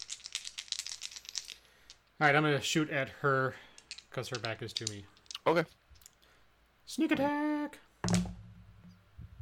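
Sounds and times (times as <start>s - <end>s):
two six-sided dice picked up and rolled: 0.0s - 2.2s, 3.6s - 6.2s
speech: 2.2s - 5.8s, 6.9s - 7.8s.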